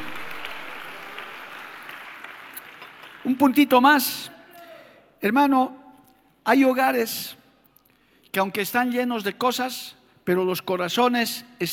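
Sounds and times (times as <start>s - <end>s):
church congregation applauding during a sermon: 0.0s - 4.3s
speech: 3.2s - 4.4s, 5.2s - 5.8s, 6.4s - 7.4s, 8.3s - 11.7s.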